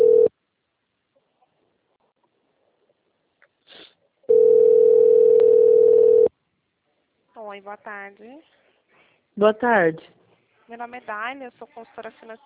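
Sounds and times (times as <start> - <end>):
telephone call tone while a number is dialed: 0.0 - 0.3, 4.3 - 6.3
speech: 7.6 - 8.6, 9.4 - 12.4.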